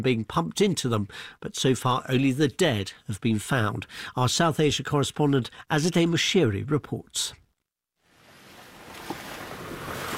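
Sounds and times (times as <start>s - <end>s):
speech: 0.0s - 7.4s
vehicle driving on winding muddy dirt mountain roads in northern Nepal: 8.6s - 10.1s.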